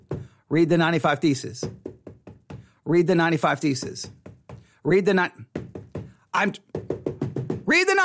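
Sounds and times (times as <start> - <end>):
knocking on a door: 0.0 - 0.4, 1.6 - 2.8, 3.8 - 4.7, 5.4 - 7.8
speech: 0.5 - 1.8, 2.9 - 4.2, 4.8 - 5.4, 6.4 - 6.7, 7.7 - 8.0.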